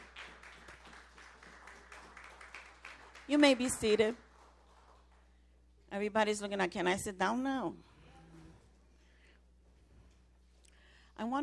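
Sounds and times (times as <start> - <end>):
audience applause: 0.0 - 5.1
speech: 3.3 - 4.2, 6.0 - 7.9, 11.2 - 11.4.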